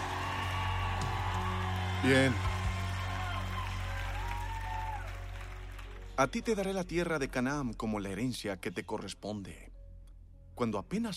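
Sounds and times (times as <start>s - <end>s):
congregation shouting and whooping together: 0.0s - 5.4s
speech: 2.0s - 2.5s, 6.2s - 9.7s, 10.6s - 11.1s.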